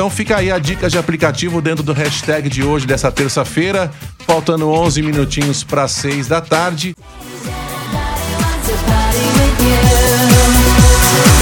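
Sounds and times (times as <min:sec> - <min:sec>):
speech: 0:00.0 - 0:07.3
upbeat pop dance track on the radio: 0:04.8 - 0:11.4.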